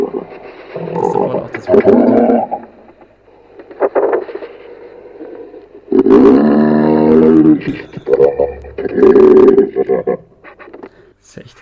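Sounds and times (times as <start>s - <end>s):
moose grunting: 0.0s - 2.6s, 6.0s - 10.4s
speech: 7.7s - 8.0s, 9.0s - 10.3s.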